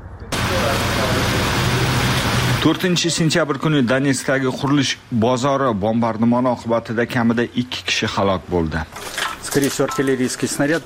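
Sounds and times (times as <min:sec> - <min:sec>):
steady roar of heavy traffic jammed on city roads in Kyiv: 0:00.0 - 0:02.8
speech: 0:02.6 - 0:10.8.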